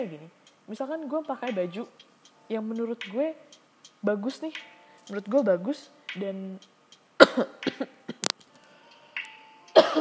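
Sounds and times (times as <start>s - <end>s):
speech: 0.0s - 6.7s, 7.4s - 8.1s
person coughing: 7.2s - 8.2s, 9.8s - 10.0s.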